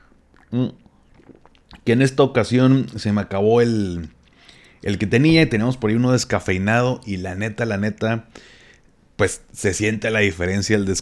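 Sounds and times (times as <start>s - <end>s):
quick sip of black coffee: 0.0s - 1.9s, 4.2s - 4.9s
throaty swallow: 0.0s - 1.9s
speech: 0.5s - 0.8s, 1.9s - 4.2s, 4.8s - 8.6s, 9.2s - 11.0s.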